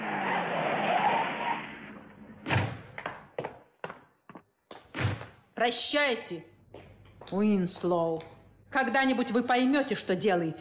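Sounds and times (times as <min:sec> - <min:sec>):
car braking hard to a stop with a squealing skid: 0:00.0 - 0:02.4
speech: 0:05.6 - 0:06.5, 0:07.3 - 0:10.5.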